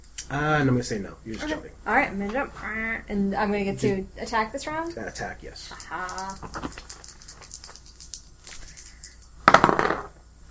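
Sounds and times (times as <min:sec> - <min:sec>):
speech: 0:00.3 - 0:06.8
dice tumbling on a hard table: 0:06.1 - 0:10.1.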